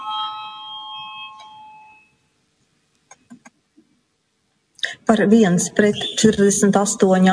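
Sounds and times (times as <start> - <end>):
parliament chamber electronic voting bell chiming: 0.0 - 2.3
speech: 5.1 - 7.3.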